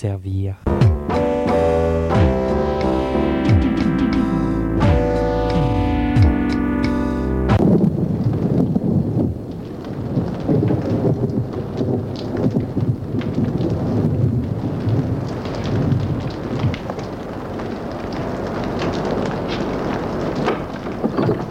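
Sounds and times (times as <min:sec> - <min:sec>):
speech: 0:00.0 - 0:01.7
deep rolling thunder of an outdoor thunderstorm: 0:00.7 - 0:21.4
steady dense rainfall with crackling drops: 0:02.2 - 0:21.4.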